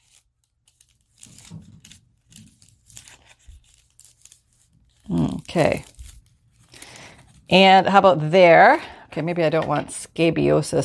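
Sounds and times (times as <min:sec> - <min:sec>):
paper of a junk mail envelope being cut or torn: 0:00.0 - 0:07.6
speech: 0:05.1 - 0:05.9, 0:07.5 - 0:10.8.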